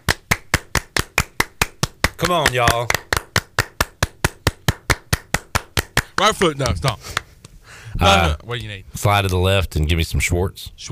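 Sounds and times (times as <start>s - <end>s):
group of people clapping hands to a fast even beat: 0.0s - 7.3s
speech: 2.2s - 3.0s, 6.2s - 7.2s, 8.0s - 10.9s
person calling out: 8.0s - 8.4s.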